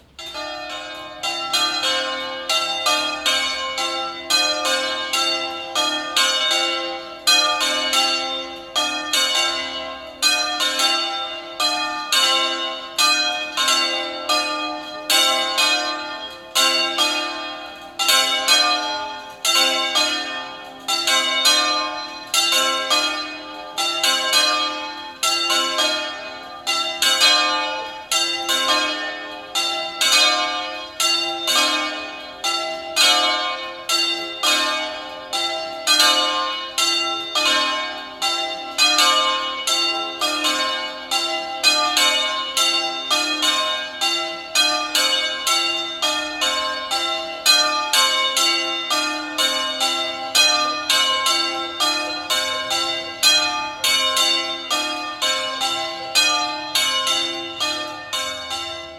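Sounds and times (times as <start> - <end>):
bells of San Giovanni Del Tempio ringing: 0.0 - 58.9.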